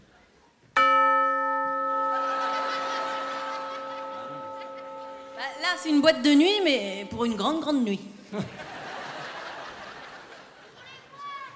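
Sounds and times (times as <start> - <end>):
bell strike in a nightclub-style rhythm: 0.8 - 7.8
laughter: 1.9 - 5.6, 8.2 - 11.2
speech: 5.7 - 8.7.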